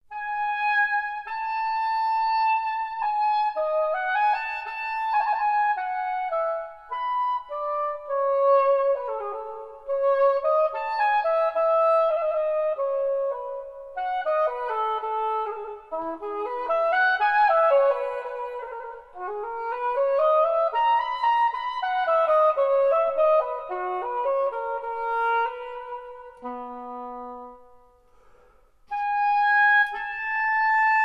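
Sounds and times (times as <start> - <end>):
solo oboe suite: 0.0 - 31.0.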